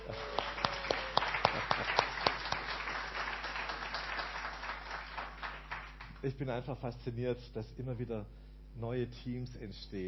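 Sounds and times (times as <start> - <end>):
room full of people applauding: 0.0 - 6.2
speech: 6.2 - 10.0.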